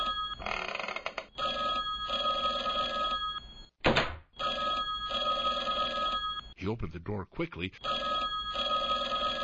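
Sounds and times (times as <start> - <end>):
telephone bell ringing: 0.0 - 3.7, 4.4 - 6.5, 7.8 - 9.4
speech: 6.6 - 8.1.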